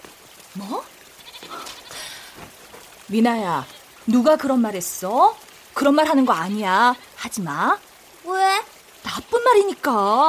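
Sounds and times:
speech: 0:00.6 - 0:01.7, 0:03.1 - 0:10.2
goat bleating: 0:01.2 - 0:02.1.

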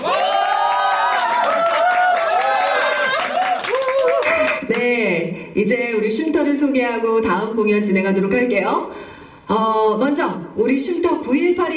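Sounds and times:
large audience at a live performance event cheering and whooping: 0:00.0 - 0:04.6
steady applause of a large audience: 0:00.0 - 0:04.9
speech: 0:05.6 - 0:11.7.

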